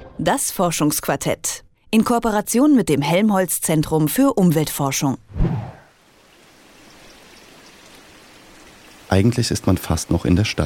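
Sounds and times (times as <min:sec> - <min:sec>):
speech: 0:00.2 - 0:05.6, 0:09.1 - 0:10.6
small stream flowing between meadows: 0:05.9 - 0:10.6.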